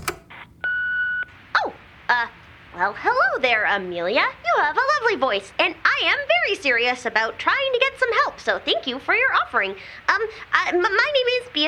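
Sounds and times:
answering machine electronic beep before message playback: 0.0s - 1.3s
speech: 2.1s - 11.6s.

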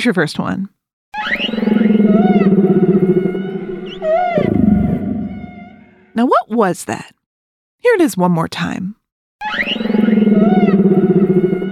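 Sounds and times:
speech: 0.0s - 3.3s, 6.2s - 7.2s, 7.8s - 11.0s
humpback whale song: 1.2s - 6.1s, 9.5s - 11.7s.

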